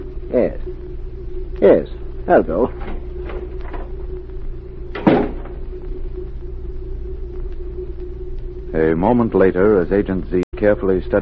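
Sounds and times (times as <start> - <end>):
steady low rumble: 0.0 - 11.2
speech: 0.3 - 0.6, 1.6 - 2.9, 8.8 - 11.2
door opening and closing with a solid clunk: 4.9 - 5.6.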